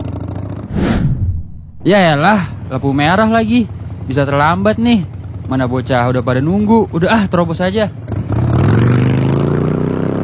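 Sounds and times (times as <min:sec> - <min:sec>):
speeding motorbike engine roaring while running a red light: 0:00.0 - 0:10.2
speech: 0:01.8 - 0:08.0.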